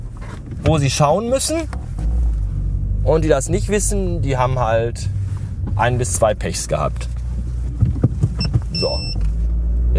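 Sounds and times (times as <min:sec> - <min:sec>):
car engine rumble while slowly reversing into parking space: 0:00.0 - 0:09.9
speech: 0:00.7 - 0:01.8, 0:03.0 - 0:05.2, 0:05.8 - 0:07.2
high electronic parking sensor beeps: 0:08.3 - 0:09.3.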